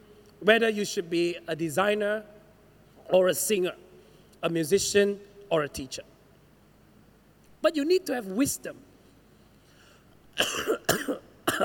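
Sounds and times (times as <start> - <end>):
speech: 0.4 - 2.4, 3.1 - 3.8, 4.4 - 6.1, 7.6 - 8.9
person coughing: 10.4 - 11.6.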